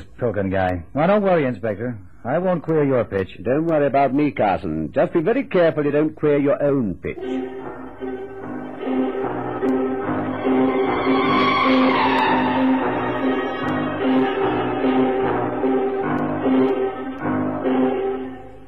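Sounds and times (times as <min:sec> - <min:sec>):
speech: 0:00.2 - 0:08.3
bus engine labouring on a ride to the old Brompton Road: 0:08.3 - 0:17.9.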